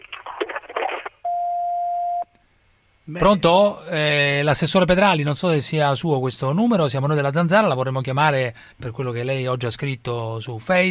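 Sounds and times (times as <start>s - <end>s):
answering machine beep on a phone line: 1.2s - 2.2s
speech: 3.1s - 10.9s.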